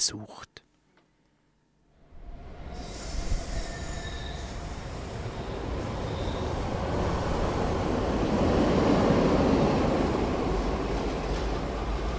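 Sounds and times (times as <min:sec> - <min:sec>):
speech: 0:00.0 - 0:00.6
train rumbling past outside office: 0:02.0 - 0:12.1
train metallic wheel squeals: 0:02.7 - 0:06.5.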